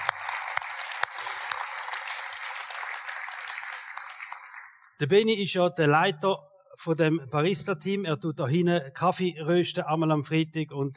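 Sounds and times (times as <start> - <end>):
crowd applauding: 0.0 - 5.0
speech: 5.0 - 10.9.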